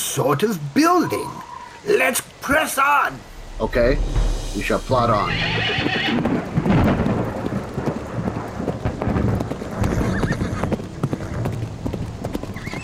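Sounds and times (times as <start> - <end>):
steady rain in a storm: 0.0 - 12.8
speech: 0.2 - 6.5
rumbling thunder in a storm: 3.2 - 12.6
horse whinnying: 5.4 - 6.2, 9.8 - 10.8
horse hooves clip-clopping: 5.6 - 12.8.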